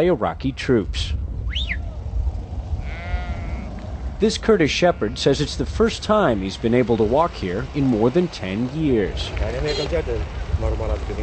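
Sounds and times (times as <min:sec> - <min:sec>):
speech: 0:00.0 - 0:01.8, 0:04.2 - 0:11.2
flock of sheep bleating on a hillside: 0:02.8 - 0:03.8, 0:04.7 - 0:05.4.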